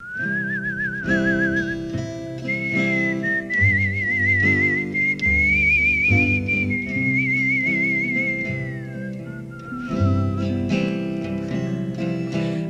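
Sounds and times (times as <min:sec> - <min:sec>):
whistled pop song melody: 0:00.0 - 0:12.6
gentle band accompaniment of bass and chords: 0:00.4 - 0:12.6.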